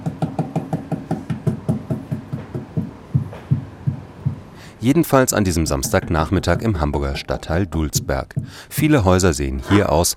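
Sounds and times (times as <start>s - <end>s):
knocking on an insulated house wall: 0.0s - 4.5s, 7.9s - 8.6s
speech: 4.8s - 10.1s.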